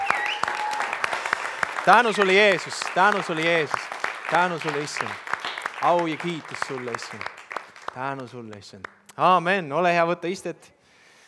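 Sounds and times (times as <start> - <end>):
audience applause: 0.0 - 8.6
speech: 1.8 - 5.2, 5.8 - 7.3, 7.9 - 10.8.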